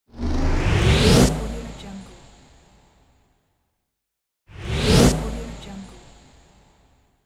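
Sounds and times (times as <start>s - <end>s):
short riser: 0.1s - 2.8s.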